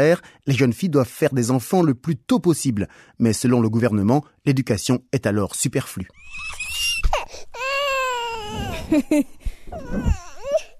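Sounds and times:
speech: 0.0 - 6.6, 8.9 - 10.2
baby crying: 6.2 - 9.0, 9.7 - 10.7.

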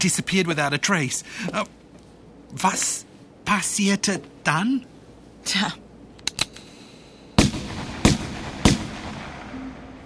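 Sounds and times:
speech: 0.0 - 1.8, 2.5 - 5.8
gunshots: 7.4 - 9.5.

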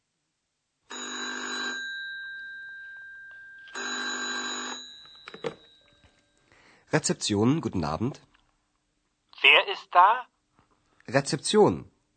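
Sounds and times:
telephone ringing at a hotel reception: 0.9 - 6.2
speech: 6.9 - 8.3, 10.0 - 10.3, 11.1 - 11.9.

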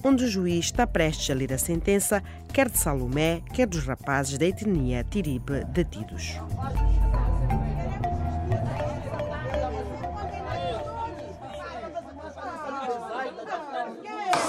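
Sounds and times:
speech: 0.0 - 7.2
crowd chattering in a courtroom: 6.4 - 14.4.

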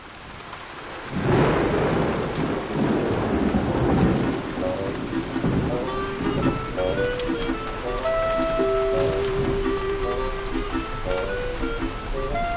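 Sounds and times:
heavy rain at a supermarket: 0.0 - 12.5
faint tonal notes: 4.7 - 12.5.

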